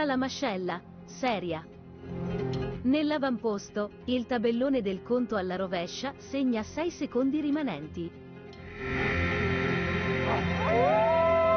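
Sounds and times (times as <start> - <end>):
speech: 0.0 - 8.2, 8.8 - 9.3, 10.7 - 11.2
several dogs howling together: 10.3 - 11.5.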